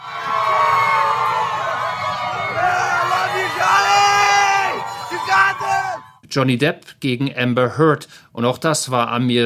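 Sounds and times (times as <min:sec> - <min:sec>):
large crowd of fans screaming and cheering: 0:00.0 - 0:06.2
speech: 0:06.3 - 0:09.4.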